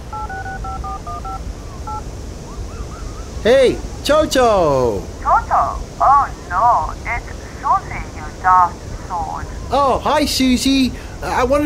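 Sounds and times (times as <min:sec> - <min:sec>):
phone keypad tones as a number is dialed: 0:00.0 - 0:02.0
steady rushing background: 0:00.0 - 0:11.6
speech: 0:03.4 - 0:07.2, 0:08.4 - 0:11.6.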